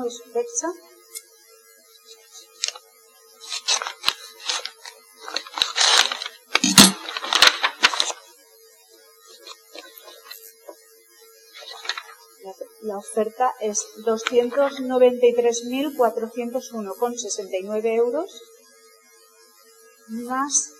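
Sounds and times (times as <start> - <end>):
speech: 0.0 - 1.2, 12.8 - 18.5, 20.1 - 20.7
envelopes tearing open at a public bid-opening for a construction contract: 2.5 - 2.8, 3.4 - 8.2, 11.6 - 12.2.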